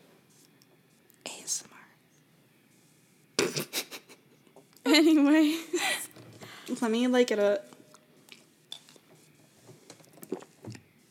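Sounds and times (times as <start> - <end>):
speech: 1.5 - 1.8, 4.9 - 6.0, 6.7 - 7.7
person gulping a drink: 10.2 - 10.8.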